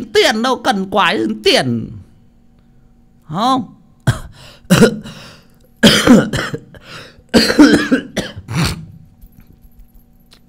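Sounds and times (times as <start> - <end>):
speech: 0.0 - 2.0, 3.3 - 3.8, 4.4 - 8.1
man coughing set off by cold air conditioning: 4.0 - 9.1.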